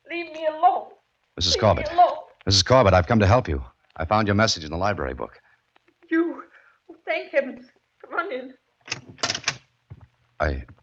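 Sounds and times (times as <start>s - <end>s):
speech: 0.5s - 5.4s, 10.4s - 10.7s
door hinges creaking: 8.8s - 10.1s
door latch rattling: 8.9s - 9.6s.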